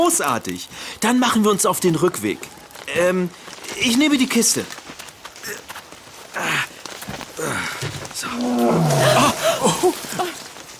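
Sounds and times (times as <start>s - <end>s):
speech: 0.0s - 5.6s, 8.3s - 10.4s
tiger roaring: 8.2s - 9.6s.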